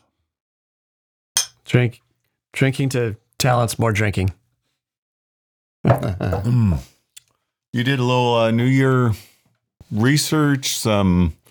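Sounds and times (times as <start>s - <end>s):
speech: 1.7s - 4.4s, 5.8s - 6.9s, 7.7s - 9.3s, 9.9s - 11.4s
glasses clinking in a toast: 5.9s - 6.5s.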